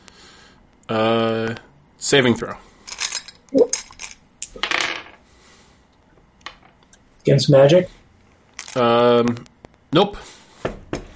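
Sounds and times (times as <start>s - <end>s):
speech: 0.9s - 2.7s, 7.2s - 8.0s, 8.8s - 10.3s
dice being rummaged for during a tabletop role-playing game: 2.9s - 5.2s, 8.6s - 8.8s.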